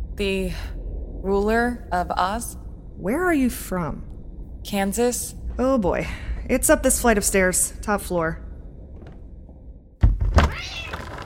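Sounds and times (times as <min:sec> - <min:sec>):
speech: 0:00.2 - 0:08.4
cat giving a drawn-out meow: 0:10.5 - 0:11.1.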